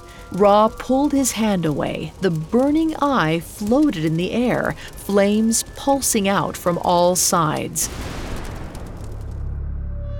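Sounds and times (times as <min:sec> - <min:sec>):
speech: 0:00.3 - 0:08.1
deep rumbling explosion sound effect: 0:07.9 - 0:10.1.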